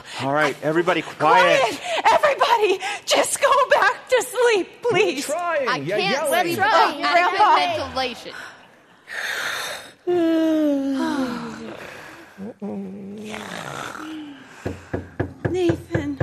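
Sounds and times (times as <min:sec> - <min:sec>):
speech: 0:00.2 - 0:09.2, 0:10.1 - 0:11.0
rapid sharp knocks on a door: 0:14.6 - 0:16.2.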